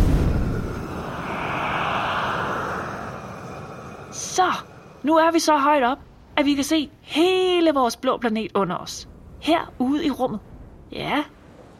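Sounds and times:
airplane engine roaring under more throttle to climb higher: 0.0s - 5.1s
speech: 4.4s - 11.4s.

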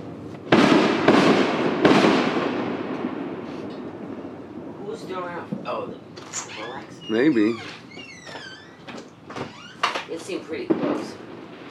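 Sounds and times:
fireworks going off across the street: 0.0s - 7.9s, 9.1s - 11.6s
speech: 7.1s - 7.8s.

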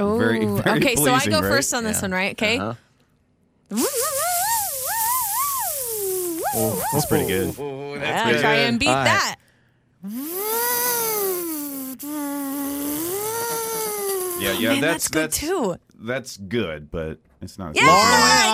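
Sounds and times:
speech: 0.0s - 2.8s, 3.7s - 4.3s, 6.5s - 9.4s, 10.0s - 10.5s, 14.4s - 18.5s
person's voice imitating a dentist's drill: 3.7s - 7.6s, 10.0s - 15.0s.

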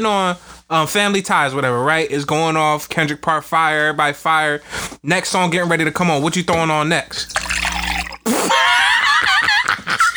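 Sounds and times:
speech: 0.0s - 7.4s
water poured into a glass in front of a microphone: 7.1s - 8.6s
laughter: 8.5s - 10.1s.

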